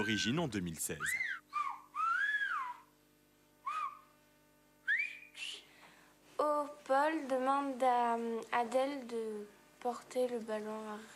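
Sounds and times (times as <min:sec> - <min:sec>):
speech: 0:00.0 - 0:01.6, 0:06.9 - 0:11.1
Béarnais whistled language message of piercing gliding whistles: 0:01.0 - 0:02.9, 0:03.6 - 0:04.0, 0:04.8 - 0:05.6.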